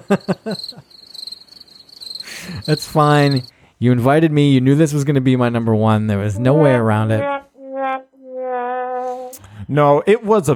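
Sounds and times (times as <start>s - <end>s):
crickets chirping: 0.0s - 3.6s
speech: 0.1s - 1.0s, 2.4s - 7.4s, 9.7s - 10.5s.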